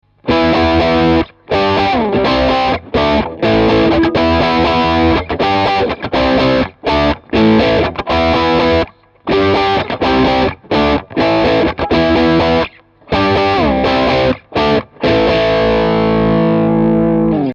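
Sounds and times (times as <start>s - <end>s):
Stratocaster electric guitar on bridge and middle pickups played hard: 0.1s - 17.5s.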